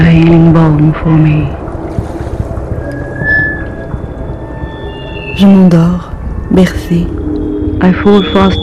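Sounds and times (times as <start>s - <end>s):
speech: 0.2s - 1.6s, 5.4s - 7.2s, 7.8s - 8.6s
water lapping against a boat hull: 1.5s - 2.8s
faint sustained high tone: 2.9s - 8.6s.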